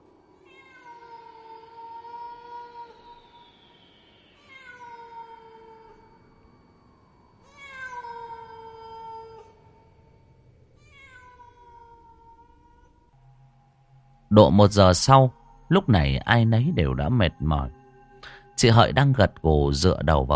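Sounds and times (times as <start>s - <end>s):
stray cat meowing in the distance at night: 0.4s - 3.2s, 4.4s - 6.0s, 7.4s - 9.8s, 10.8s - 12.9s
speech: 14.3s - 17.8s, 18.6s - 20.3s.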